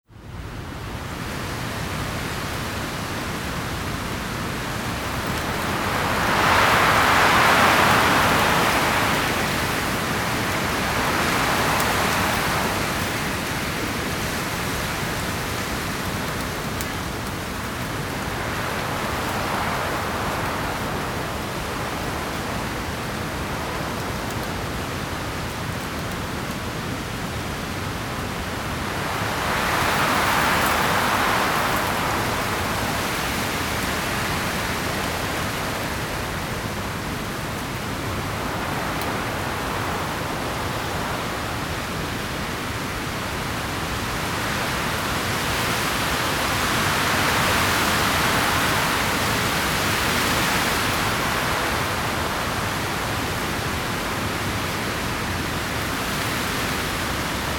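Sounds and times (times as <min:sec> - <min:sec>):
heavy wind: 0:00.1 - 0:57.5.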